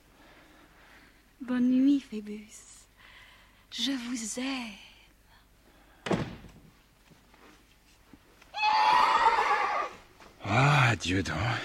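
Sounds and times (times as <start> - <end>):
speech: 1.4 - 2.7, 3.7 - 4.9, 10.5 - 11.6
dull thunk: 6.0 - 6.6
mare neighing: 8.6 - 10.0.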